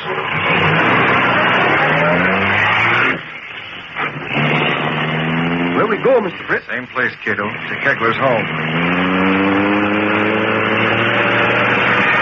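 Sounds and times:
car engine roaring and speeding away: 0.0s - 12.2s
speech: 6.0s - 9.1s.

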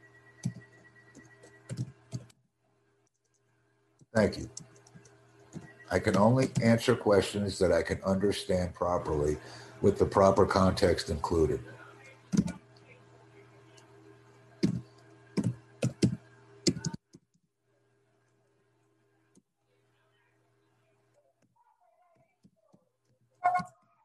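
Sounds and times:
computer keyboard keystrokes: 0.4s - 2.3s, 4.5s - 6.7s, 12.3s - 12.6s, 14.6s - 17.0s
steady low hum: 3.5s - 17.0s
speech: 4.2s - 4.7s, 5.9s - 12.5s.

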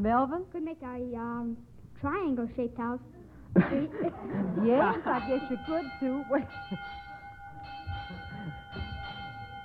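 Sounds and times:
speech: 0.0s - 7.0s
laughter: 3.6s - 5.5s
school bell ringing: 5.0s - 9.6s.

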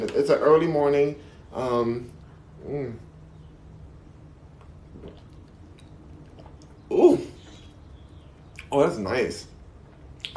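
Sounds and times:
quiet low hum: 0.0s - 10.3s
speech: 0.2s - 3.1s, 6.9s - 7.3s, 8.7s - 9.5s
sipping pressed juice: 4.4s - 8.7s
loud slurp of pressed juice: 4.6s - 7.8s.

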